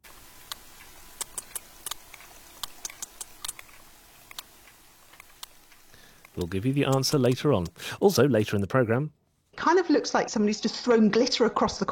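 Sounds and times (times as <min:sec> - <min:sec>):
steady low hiss: 0:00.0 - 0:11.9
sperm whale clicking in the Mediterranean: 0:00.4 - 0:07.8
speech: 0:06.4 - 0:11.9.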